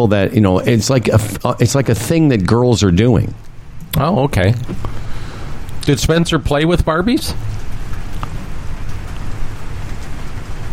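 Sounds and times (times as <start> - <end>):
speech: 0.0 - 5.0, 5.8 - 7.6
heavy rain on a tin roof: 4.7 - 10.7.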